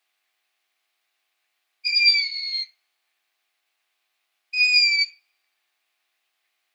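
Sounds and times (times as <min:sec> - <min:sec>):
long-eared owl giving high squeaky calls: 0:01.9 - 0:02.7, 0:04.6 - 0:05.2.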